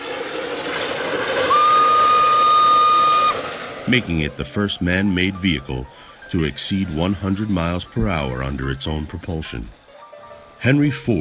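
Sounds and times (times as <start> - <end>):
steam locomotive rolling by with hissing rumble: 0.0 - 9.8
long steam locomotive whistle blast: 1.4 - 3.4
speech: 3.9 - 9.8, 10.6 - 11.1.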